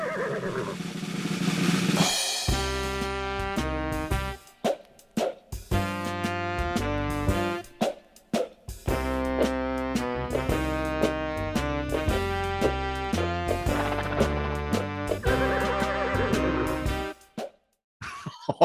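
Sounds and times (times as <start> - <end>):
horse whinnying: 0.0 - 0.8, 15.2 - 16.8
loud dense film soundtrack music with sustained tones: 0.8 - 8.0, 8.8 - 17.4
laughter: 18.0 - 18.6.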